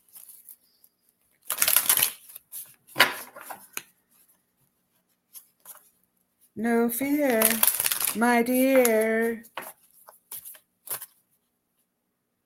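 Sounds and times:
deck of playing cards shuffling: 1.4 - 3.9, 7.1 - 11.2
speech: 6.6 - 9.5.

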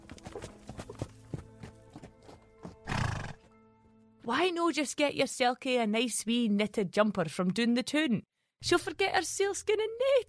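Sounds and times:
pony hooves clip-clopping: 0.0 - 3.5
pony breathy whinny while nuzzling: 2.8 - 3.4
speech: 4.3 - 10.2.

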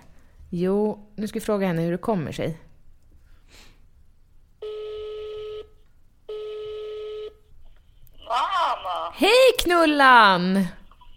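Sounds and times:
faint noise: 0.0 - 11.1
speech: 0.5 - 2.7, 9.2 - 10.8
ringback tones over a phone line: 4.6 - 7.4.

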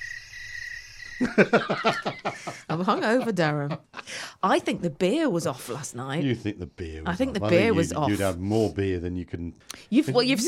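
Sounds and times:
chorus of crickets chirping: 0.0 - 1.4
laughter: 1.2 - 4.2
speech: 1.2 - 10.4.

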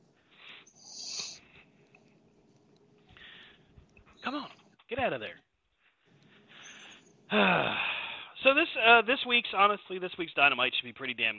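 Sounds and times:
dog snorting and wheezing: 0.7 - 1.4
speech: 4.3 - 5.4, 7.3 - 7.8, 8.4 - 11.3.

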